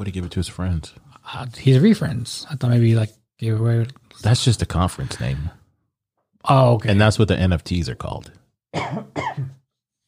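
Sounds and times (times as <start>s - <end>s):
speech: 0.0s - 5.6s, 6.4s - 9.5s
rasping throaty cough: 8.8s - 9.6s.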